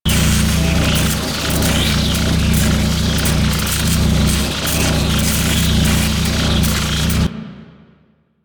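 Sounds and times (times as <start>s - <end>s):
energy beam loop: 0.0s - 7.3s.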